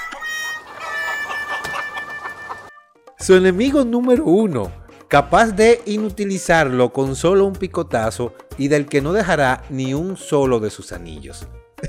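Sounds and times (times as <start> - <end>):
chicken clucking and squawking: 0.0 - 2.8
speech: 3.2 - 11.8.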